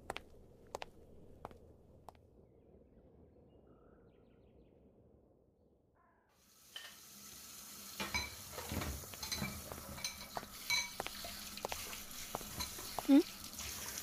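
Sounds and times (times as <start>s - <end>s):
soft steady wash of noise: 0.0s - 14.0s
ceramic bowls and chopsticks clinking while being washed after a meal: 8.0s - 13.3s.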